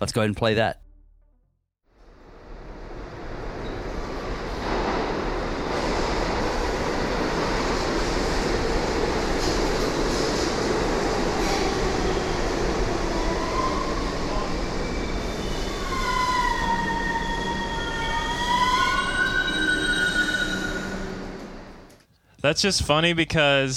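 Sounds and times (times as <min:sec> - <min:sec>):
speech: 0:00.0 - 0:00.8, 0:22.4 - 0:23.7
subway train rumbling into a station: 0:01.9 - 0:22.0
subway train wheels screeching and groaning: 0:13.3 - 0:21.4.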